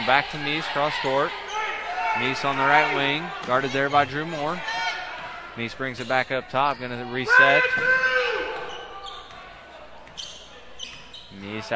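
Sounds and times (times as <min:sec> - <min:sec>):
crowd noise: 0:00.0 - 0:11.7
speech: 0:00.1 - 0:01.4, 0:02.2 - 0:04.8, 0:05.6 - 0:08.1, 0:11.4 - 0:11.7
basketball dribbled on a court during a game: 0:07.6 - 0:09.4.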